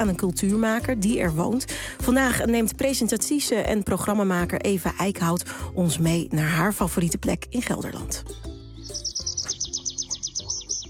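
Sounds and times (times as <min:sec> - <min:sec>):
speech: 0:00.0 - 0:08.5
birds chirping in a forest at the Heumensoord nature area near Nijmegen: 0:08.8 - 0:10.8.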